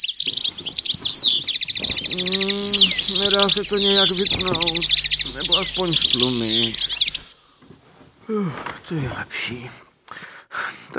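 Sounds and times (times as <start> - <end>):
several birds chirping and trilling: 0.0 - 7.8
low humming tone: 1.4 - 7.4
speech: 3.4 - 6.8, 8.3 - 9.8.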